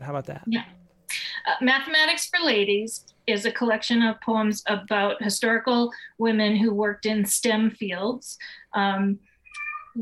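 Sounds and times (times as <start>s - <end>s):
speech: 0.1s - 0.8s, 1.5s - 9.3s
male cat meowing: 9.4s - 10.0s.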